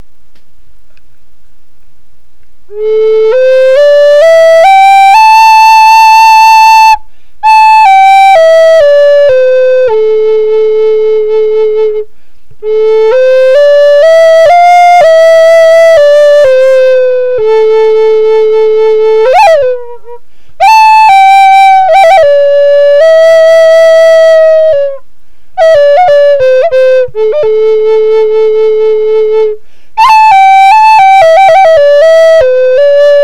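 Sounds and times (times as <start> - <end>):
flutes: 2.7 - 33.2.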